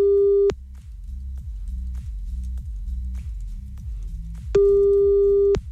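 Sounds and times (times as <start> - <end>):
telephone busy tone after a dropped call: 0.0 - 0.5, 4.6 - 5.6.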